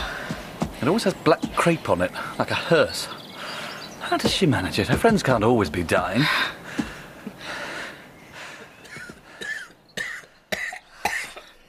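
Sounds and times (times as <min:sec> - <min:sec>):
raspy labored breathing: 0:00.0 - 0:00.8, 0:03.0 - 0:04.0, 0:06.2 - 0:11.6
speech: 0:00.8 - 0:03.2, 0:04.1 - 0:06.6
person coughing harshly: 0:08.8 - 0:11.6.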